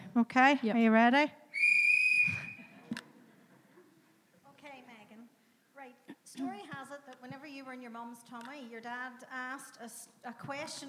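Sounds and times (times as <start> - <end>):
speech: 0.2 - 1.4, 6.4 - 10.8
whistle blast starting a timed game: 1.5 - 2.8.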